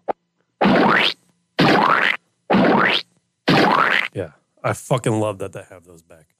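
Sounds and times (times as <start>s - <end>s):
comedic splooge sound effect: 0.6s - 4.1s
speech: 4.2s - 6.3s.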